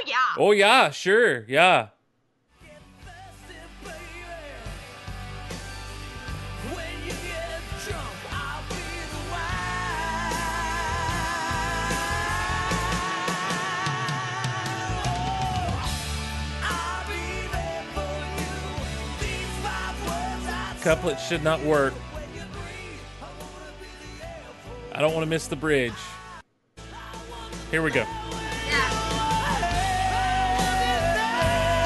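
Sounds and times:
speech: 0:00.1 - 0:02.0, 0:20.8 - 0:22.0, 0:25.0 - 0:26.2, 0:27.7 - 0:28.3
loud rock track with driving drums and distorted guitars: 0:02.5 - 0:31.8.

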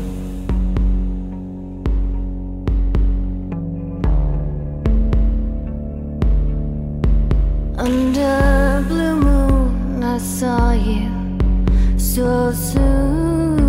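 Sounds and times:
deep throbbing low pulse: 0:00.0 - 0:13.6
sustained synth chords in a pop cover song intro: 0:00.0 - 0:13.6
sharp percussive hits: 0:07.7 - 0:10.4
speech: 0:12.2 - 0:13.2.

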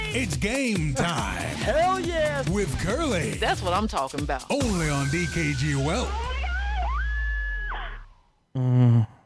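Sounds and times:
speech: 0:00.1 - 0:06.4, 0:08.6 - 0:09.1
loud buzzy tone: 0:04.6 - 0:08.1
shrill scream sound effect opening a game segment: 0:06.0 - 0:08.2.

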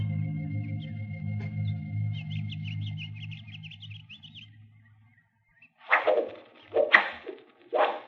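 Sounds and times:
low droning hum: 0:00.0 - 0:05.2
chirping overhead: 0:00.0 - 0:08.0
arrows whizzing past and striking: 0:05.8 - 0:08.0.

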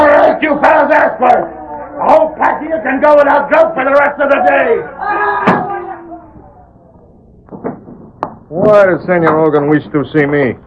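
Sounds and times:
speech: 0:00.5 - 0:05.7, 0:08.5 - 0:10.6
door slamming shut: 0:05.4 - 0:05.8.

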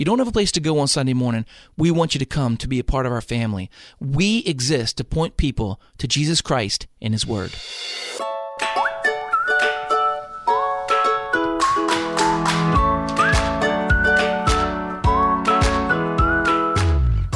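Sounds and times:
speech: 0:00.0 - 0:08.3
rhythmic backing track with punchy percussive hits: 0:07.2 - 0:17.3
bright whistled melody: 0:08.6 - 0:17.3.

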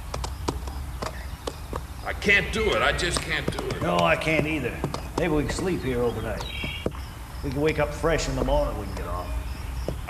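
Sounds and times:
horse hooves clip-clopping from a horse with a rider: 0:00.0 - 0:10.0
speech: 0:02.2 - 0:06.6, 0:07.4 - 0:09.4.

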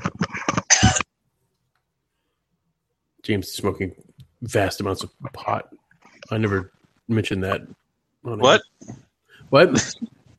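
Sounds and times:
person coughing: 0:00.1 - 0:01.1
speech: 0:03.3 - 0:10.1.

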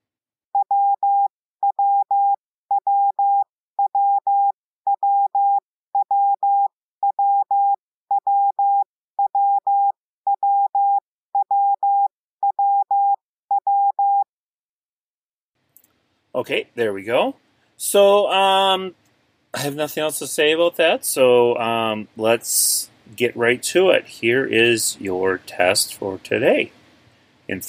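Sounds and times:
Morse code letter W beeping tone in dit-dah-dah pattern: 0:00.6 - 0:14.3
speech: 0:16.4 - 0:19.0, 0:19.6 - 0:26.8, 0:27.5 - 0:27.6.

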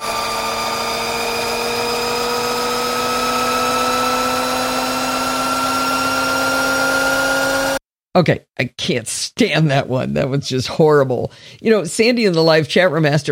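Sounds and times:
Harley LiveWire electric motorcycle motor whining while accelerating: 0:00.0 - 0:07.8
speech: 0:08.2 - 0:13.2.

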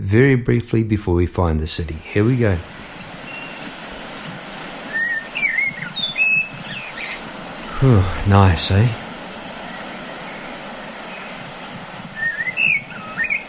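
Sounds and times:
speech: 0:00.1 - 0:02.9, 0:07.8 - 0:09.0
blackbirds singing in coastal scrub at Point Leo on the Mornington Peninsula, Australia: 0:02.7 - 0:13.4.

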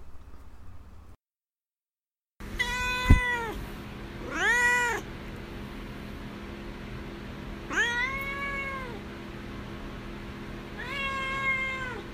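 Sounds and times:
pet cat meowing: 0:02.6 - 0:03.6, 0:04.2 - 0:05.1, 0:07.7 - 0:09.0, 0:10.8 - 0:12.1.

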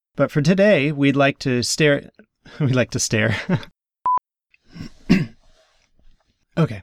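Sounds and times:
speech: 0:00.2 - 0:03.7, 0:06.5 - 0:06.8
throat clearing: 0:04.7 - 0:05.5.

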